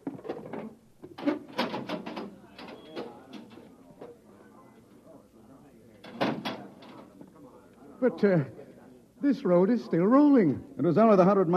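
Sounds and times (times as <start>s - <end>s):
heavy metal manhole access door being hauled open: 1.2s - 3.5s, 6.1s - 6.7s
speech: 8.0s - 8.6s, 9.2s - 11.5s.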